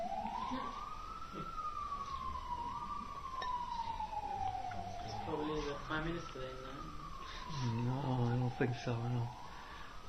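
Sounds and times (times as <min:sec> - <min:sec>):
fire engine siren wailing through New York city streets: 0:00.0 - 0:10.0
low hum of traffic: 0:00.0 - 0:10.0
speech: 0:05.9 - 0:06.7, 0:07.6 - 0:09.4.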